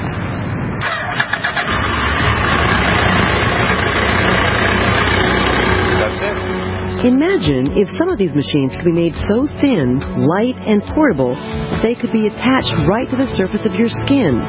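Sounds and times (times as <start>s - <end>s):
electric motorbike powering up after RFID authentication: 0.8s - 7.5s
speech: 7.0s - 14.4s.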